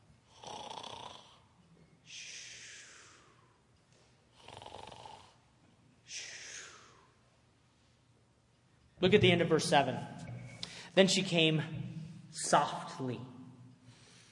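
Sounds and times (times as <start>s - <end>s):
sleeping man snoring: 0.3s - 1.4s, 4.4s - 5.4s
speech: 9.0s - 10.2s, 11.0s - 13.3s.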